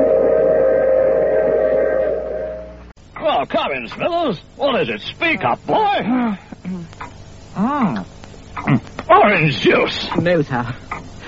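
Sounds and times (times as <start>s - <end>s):
train whistle blast at a station: 0.0s - 2.9s
low mechanical rumble of a train at a station: 0.0s - 9.8s
speech: 3.4s - 7.0s, 7.6s - 8.1s, 8.7s - 11.2s.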